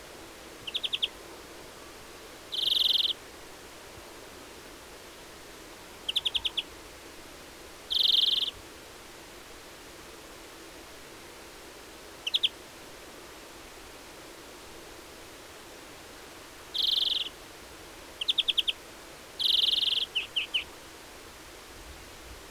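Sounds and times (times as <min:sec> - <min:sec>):
soft background hiss: 0:00.0 - 0:22.4
European greenfinch chip notes and buzzy wheezes: 0:00.7 - 0:01.1, 0:02.5 - 0:03.2, 0:07.9 - 0:08.5, 0:16.8 - 0:17.3, 0:19.4 - 0:20.6.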